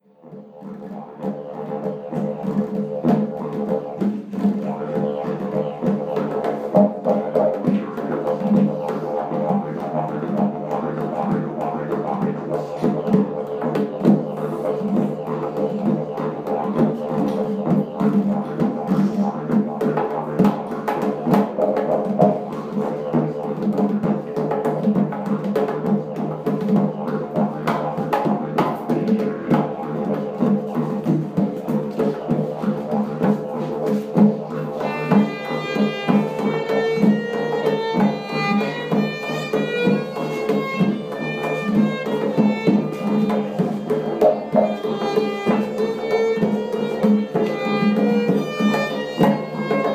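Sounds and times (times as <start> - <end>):
didgeridoo: 0.1 - 49.9
violin: 34.5 - 49.9.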